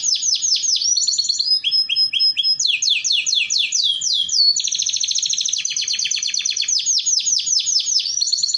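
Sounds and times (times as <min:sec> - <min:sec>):
Belgian canary song: 0:00.0 - 0:08.5.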